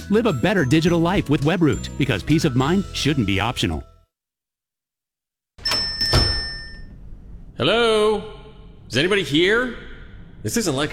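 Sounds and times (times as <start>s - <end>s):
speech: 0.1s - 3.9s, 7.6s - 8.3s, 8.9s - 10.9s
door opening into a bank: 5.6s - 7.0s.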